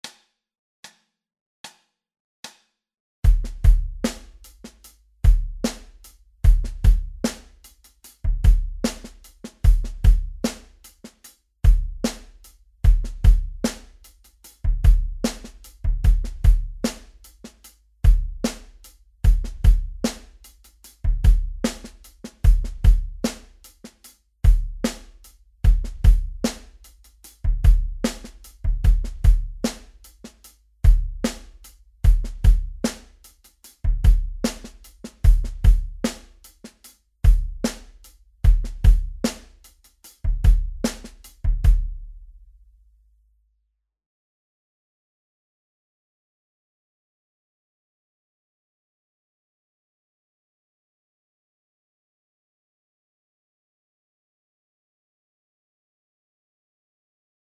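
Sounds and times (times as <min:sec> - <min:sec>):
drum slap: 0:03.3 - 0:04.5, 0:05.3 - 0:07.6, 0:08.3 - 0:10.8, 0:11.7 - 0:14.0, 0:14.6 - 0:20.4, 0:21.0 - 0:23.6, 0:25.7 - 0:33.2, 0:33.9 - 0:36.4, 0:37.3 - 0:39.6, 0:40.2 - 0:42.0.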